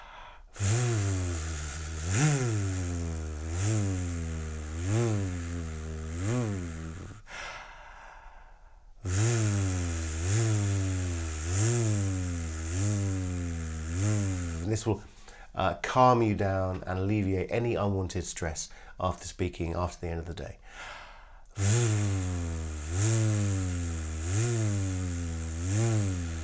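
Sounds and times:
voice imitating a low revving engine with a buzzing V sound: 0.6 - 7.3, 9.0 - 15.0, 21.6 - 26.4
speech: 14.8 - 20.9, 21.6 - 23.8.

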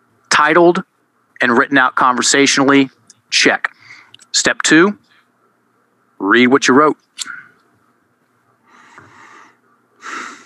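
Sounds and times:
speech: 0.4 - 3.8, 4.4 - 5.1, 6.2 - 7.4
breath intakes before reading aloud: 3.7 - 4.2, 8.6 - 10.4.

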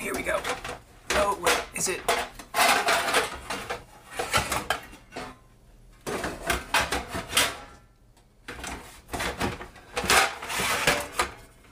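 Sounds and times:
metal pizza pans clattering and scraping as a frozen pizza is set on one: 0.0 - 7.9, 8.5 - 11.6
speech: 1.8 - 2.3.

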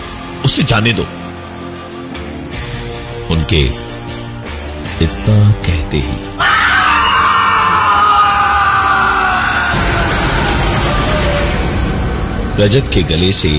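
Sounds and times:
speech: 0.5 - 1.2, 3.3 - 3.8, 5.0 - 6.6, 12.6 - 13.5
loud anguished human scream echoing through jungle: 6.4 - 11.4.

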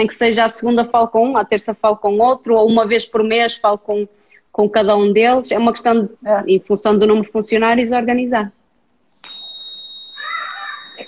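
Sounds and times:
speech: 0.0 - 8.6
bell ringing with a buzzy rattling edge: 9.2 - 11.0.

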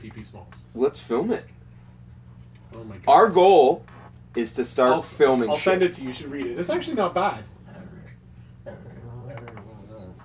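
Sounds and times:
speech: 0.0 - 1.6, 2.7 - 7.5
low hum: 0.0 - 10.2
male dog making small high whining noises: 7.8 - 10.2.

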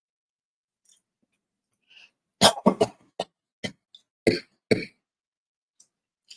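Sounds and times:
person coughing in a fit: 2.4 - 5.0.

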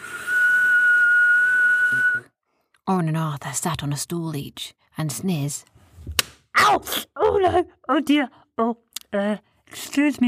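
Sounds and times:
stovetop kettle whistling: 0.0 - 2.3
speech: 2.9 - 10.2.

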